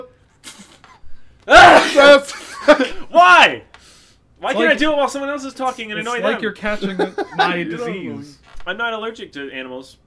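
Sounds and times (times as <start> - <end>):
person sneezing: 0.4 - 2.4
speech: 1.5 - 3.7, 4.4 - 10.0
laughter: 1.8 - 3.1, 6.0 - 8.1
brief quiet breathy lead-in before a sneeze: 3.8 - 4.3.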